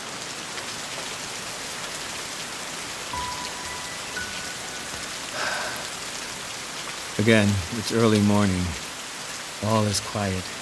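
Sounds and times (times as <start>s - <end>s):
steady rain: 0.0s - 10.6s
faint tonal chirps: 3.2s - 5.9s
speech: 7.2s - 8.8s, 9.6s - 10.6s.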